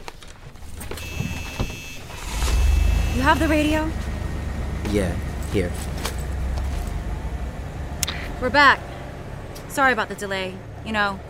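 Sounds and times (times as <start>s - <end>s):
van engine rumbling while being driven to a new parking spot: 0.3s - 11.2s
thin mechanical whine: 0.7s - 8.6s
speech: 3.2s - 4.0s, 4.8s - 6.1s, 8.4s - 8.9s, 9.8s - 11.2s.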